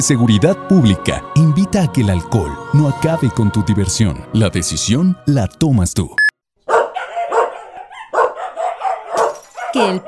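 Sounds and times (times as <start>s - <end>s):
speech: 0.0s - 6.2s, 9.8s - 10.0s
dog barking: 6.6s - 10.0s.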